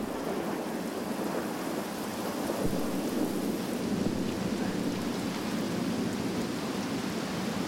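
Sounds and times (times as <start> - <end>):
low rumbling thunder: 0.0 - 0.6, 2.6 - 5.5
sudden heavy downpour in a jungle: 0.0 - 7.6.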